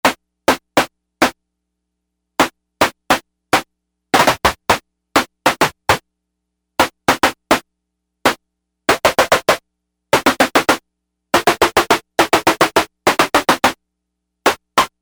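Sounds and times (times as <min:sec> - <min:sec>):
box snare drum: 0:00.0 - 0:01.4, 0:02.4 - 0:06.0, 0:06.8 - 0:07.6, 0:08.2 - 0:10.8, 0:11.4 - 0:13.8, 0:14.4 - 0:15.0.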